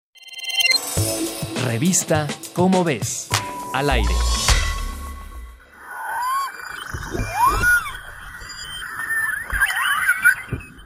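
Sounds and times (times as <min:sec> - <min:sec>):
speech: 0:01.7 - 0:04.6
beluga whale calls with squeaky swooping whistles: 0:05.8 - 0:10.8.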